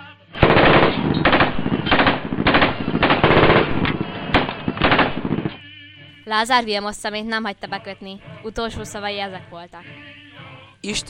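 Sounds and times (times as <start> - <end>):
firing squad rifle volley: 0.4 - 5.6
speech: 6.3 - 10.2, 10.8 - 11.0.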